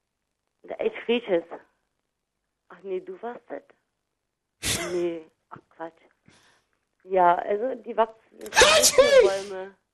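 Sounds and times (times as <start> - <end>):
speech: 0.7 - 1.7, 2.8 - 3.8, 4.8 - 6.4, 7.0 - 9.8
voice imitating a loud sneeze: 4.6 - 5.0.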